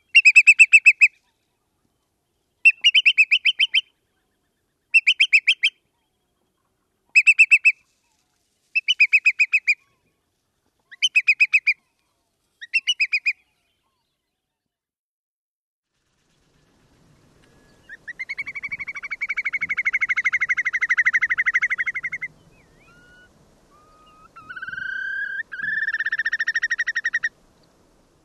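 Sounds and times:
whimbrel calling: 0:00.0 - 0:01.3, 0:02.6 - 0:06.1, 0:07.1 - 0:07.8, 0:08.8 - 0:10.1, 0:10.9 - 0:11.8, 0:12.6 - 0:13.5, 0:17.4 - 0:27.8.

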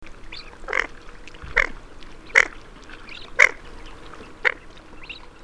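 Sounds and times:
Barrows Goldeneye Bucephala islandica: 0:00.3 - 0:04.6.

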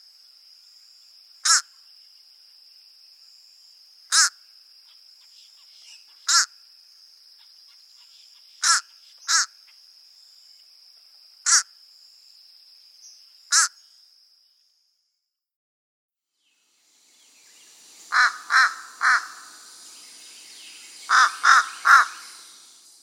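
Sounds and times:
fish crow cawing: 0:01.4 - 0:01.7, 0:04.1 - 0:04.4, 0:08.6 - 0:09.6, 0:11.5 - 0:11.7, 0:13.5 - 0:13.8, 0:18.1 - 0:19.6, 0:21.1 - 0:22.5.

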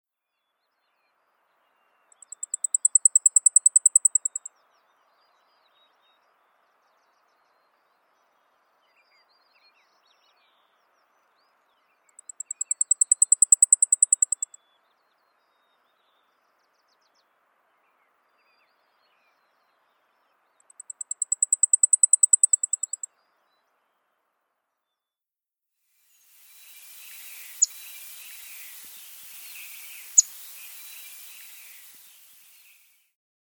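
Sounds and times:
Blackpoll Warbler: 0:02.2 - 0:04.5, 0:12.2 - 0:14.5, 0:20.7 - 0:23.1, 0:26.1 - 0:33.0.

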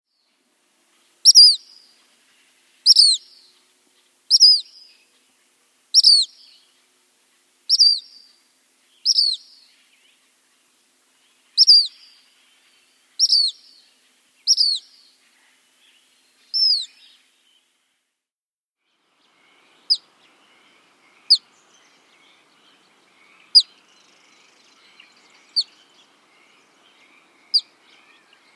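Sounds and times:
black phoebe calling: 0:01.2 - 0:02.0, 0:02.8 - 0:03.5, 0:04.3 - 0:04.9, 0:05.9 - 0:06.7, 0:07.7 - 0:08.4, 0:09.0 - 0:09.7, 0:11.5 - 0:12.3, 0:13.2 - 0:13.8, 0:14.4 - 0:15.5, 0:16.4 - 0:17.0, 0:19.8 - 0:20.1, 0:21.1 - 0:21.5, 0:22.8 - 0:23.8, 0:25.2 - 0:25.8, 0:27.1 - 0:28.3.

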